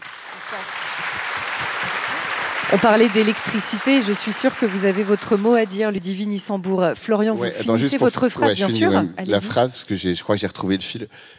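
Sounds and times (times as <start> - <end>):
audience applause welcoming a guest: 0.0 - 6.0
speech: 0.5 - 1.4, 2.7 - 11.3.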